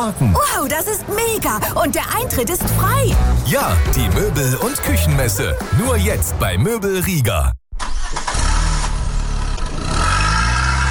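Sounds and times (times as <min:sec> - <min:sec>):
speech: 0:00.0 - 0:07.6
car engine starting and revving: 0:07.8 - 0:10.8.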